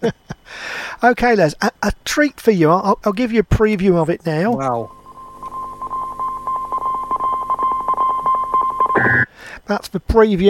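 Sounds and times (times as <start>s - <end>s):
speech: 0.0s - 5.0s, 9.4s - 10.4s
high electronic tone keying Morse code beeps: 4.6s - 9.3s.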